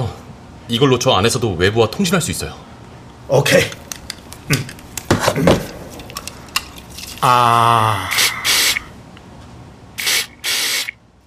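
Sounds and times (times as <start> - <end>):
speech: 0.7 - 2.7, 3.3 - 3.8, 4.5 - 4.8, 7.2 - 8.2
sedative spray bottle spritzing onto a tongue: 8.1 - 8.9, 10.0 - 11.0.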